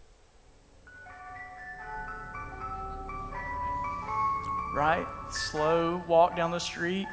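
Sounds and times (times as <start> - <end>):
tinkling ice cream truck jingle: 0.9 - 7.1
low engine rumble: 1.8 - 6.8
speech: 4.8 - 7.1.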